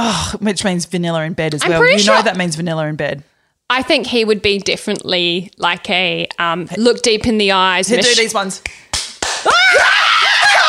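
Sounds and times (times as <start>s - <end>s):
speech: 0.0s - 10.5s
sharp loud hand slaps: 8.6s - 9.5s.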